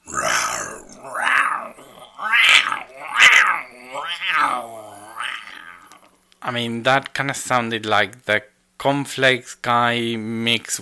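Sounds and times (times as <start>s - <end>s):
person imitating a lion roar with raspy growling yowls: 0.0s - 6.2s
speech: 6.5s - 10.8s.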